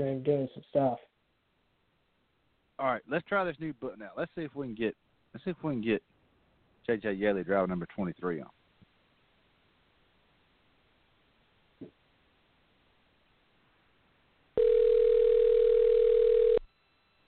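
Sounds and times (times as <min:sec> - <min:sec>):
speech: 0:00.0 - 0:01.1, 0:02.8 - 0:06.1, 0:06.9 - 0:08.6
telephone ring tone on an outgoing call: 0:14.6 - 0:16.7.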